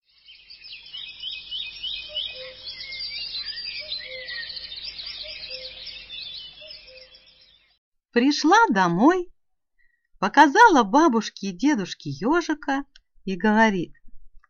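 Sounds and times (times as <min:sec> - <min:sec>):
chorus of birds singing: 0:00.0 - 0:07.8
speech: 0:08.2 - 0:09.3, 0:10.2 - 0:14.0.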